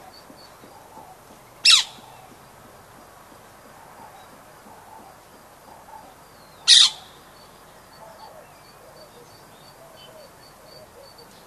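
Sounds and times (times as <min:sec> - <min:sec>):
quiet background noise: 0:00.0 - 0:11.4
rose-ringed parakeet uttering short sharp shrieks: 0:06.7 - 0:07.1.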